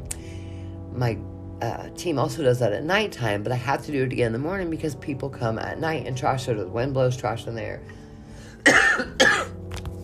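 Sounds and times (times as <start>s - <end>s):
speech: 1.0s - 8.0s, 8.6s - 8.8s
harsh coughs: 8.6s - 9.6s.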